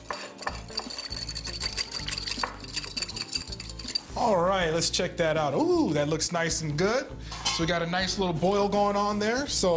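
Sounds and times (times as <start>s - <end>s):
spoon stirring a thick whiskey slurry made with cold liquid: 0.0s - 4.3s
speech: 4.2s - 9.7s.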